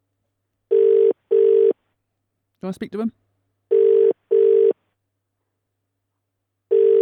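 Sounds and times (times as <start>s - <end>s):
telephone ringback tone during outgoing call: 0.7s - 1.7s, 3.7s - 4.7s, 6.7s - 7.0s
person asking a question: 2.6s - 3.2s
speech: 2.6s - 3.2s.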